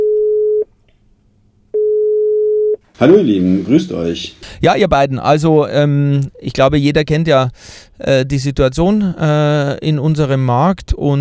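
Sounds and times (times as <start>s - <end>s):
telephone ringback tone of an outgoing call: 0.0s - 0.6s, 1.8s - 2.8s
speech: 3.0s - 11.1s.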